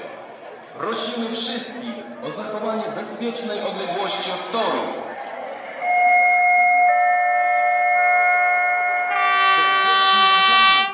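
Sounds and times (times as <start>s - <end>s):
speech: 0.8s - 5.1s
weekend train pulling in at a station platform with horn-like tone: 5.8s - 10.9s.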